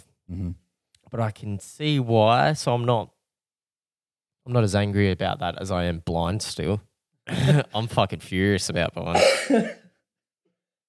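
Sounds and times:
speech: 0.3 - 3.2, 4.5 - 9.8
rough voiced cough: 7.3 - 7.7, 9.1 - 9.9.

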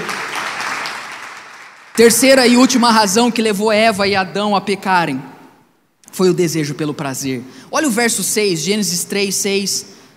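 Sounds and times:
crowd applauding: 0.0 - 2.0
speech: 2.0 - 5.3, 6.2 - 10.0.

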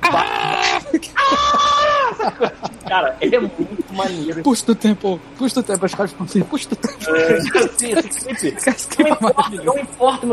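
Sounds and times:
cartoon cat screaming: 0.0 - 2.3
laughter: 0.0 - 4.5, 6.5 - 10.3
speech: 2.3 - 10.3.

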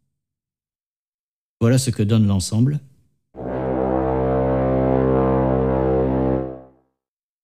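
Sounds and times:
speech: 1.6 - 2.9
deep C1 note from four layered instruments through an Ableton instrument rack: 3.4 - 6.8.

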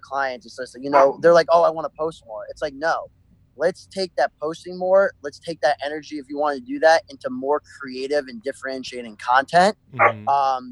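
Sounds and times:
speech: 0.0 - 10.7
dog barking: 0.9 - 1.2, 10.0 - 10.3
person murmuring: 9.9 - 10.4.

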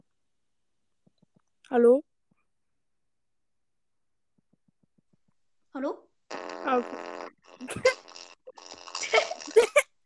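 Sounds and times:
speech: 1.7 - 2.1, 5.8 - 6.0, 6.8 - 7.0
goofy song with buzzy fart-like blurts and squeaky tones: 6.3 - 9.8.

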